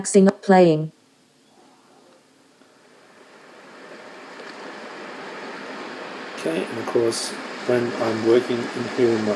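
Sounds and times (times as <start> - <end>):
speech: 0.0 - 1.0, 6.4 - 9.3
falling rain: 1.6 - 9.3
hiss of ocean waves: 2.8 - 9.3.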